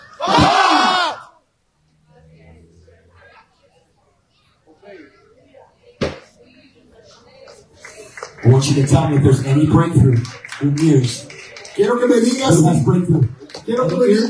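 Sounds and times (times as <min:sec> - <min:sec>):
crowd yelling in unison: 0:00.0 - 0:01.4
quiet murmuring: 0:01.8 - 0:14.2
speech: 0:08.5 - 0:14.2.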